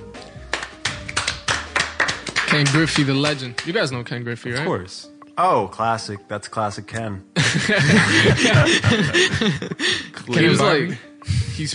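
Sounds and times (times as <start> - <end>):
hands clapping: 0.1 - 4.0
speech: 2.6 - 11.7
laughter: 7.4 - 10.6.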